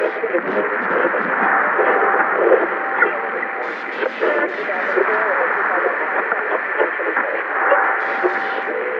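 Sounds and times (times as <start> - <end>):
radar ambience: 0.0 - 8.9.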